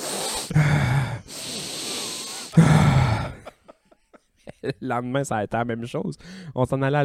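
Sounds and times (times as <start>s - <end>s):
person imitating sniffing a plate of homemade poutine: 0.0s - 3.4s
laughter: 2.6s - 4.9s
speech: 4.8s - 7.0s.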